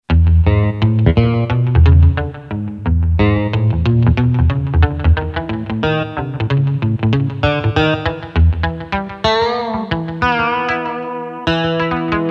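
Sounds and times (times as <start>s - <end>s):
electric guitar voice on a keyboard: 0.0s - 12.2s.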